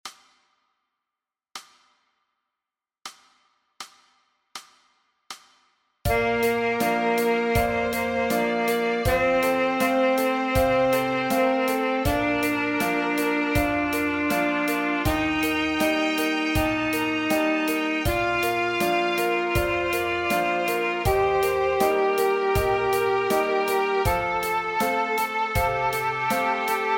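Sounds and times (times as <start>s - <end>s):
G scale played on an instrument: 6.1s - 26.9s.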